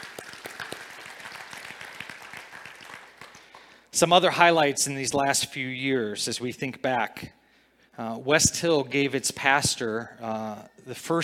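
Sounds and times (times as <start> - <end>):
audience applauding: 0.0 - 3.9
speech: 4.0 - 7.4, 8.0 - 11.2.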